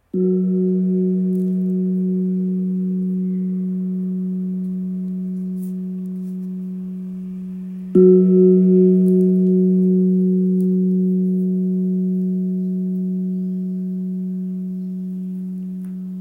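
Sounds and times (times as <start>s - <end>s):
3kg Burmese gong in F sharp: 0.0s - 16.1s.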